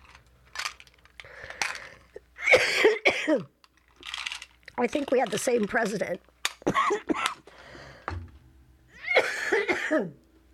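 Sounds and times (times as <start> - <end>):
harsh coughs: 2.4 - 3.5, 6.6 - 7.4, 9.1 - 10.2
speech: 3.3 - 3.6, 4.8 - 7.3, 9.9 - 10.2.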